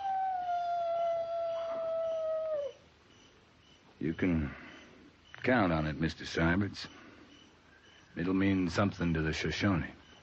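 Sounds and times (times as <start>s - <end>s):
coyote howling: 0.0s - 2.9s
speech: 4.0s - 4.6s, 5.4s - 7.0s, 8.2s - 10.0s.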